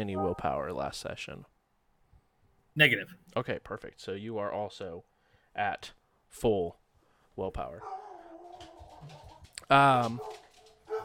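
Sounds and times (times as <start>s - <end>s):
dog barking with a yelping tone: 0.0s - 0.6s, 7.8s - 11.0s
speech: 0.0s - 1.6s, 2.8s - 6.8s, 7.4s - 8.0s, 9.0s - 10.4s.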